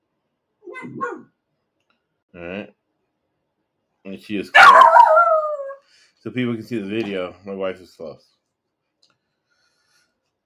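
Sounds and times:
speech: 0.8s - 1.4s, 2.3s - 2.8s, 4.0s - 5.0s, 6.2s - 8.4s
dog waiting for its owner giving a short quiet whining bark: 4.6s - 5.8s.

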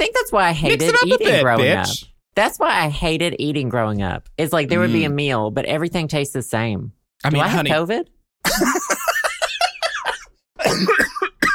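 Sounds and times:
speech: 0.0s - 9.0s, 10.8s - 11.0s
laughter: 0.7s - 2.0s, 4.7s - 5.1s, 8.5s - 10.1s
person coughing: 9.4s - 11.5s.

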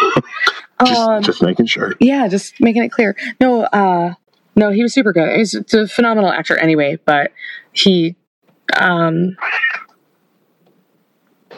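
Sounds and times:
laughter: 0.0s - 2.0s
speech: 0.2s - 9.6s
cat meowing: 9.4s - 10.0s.

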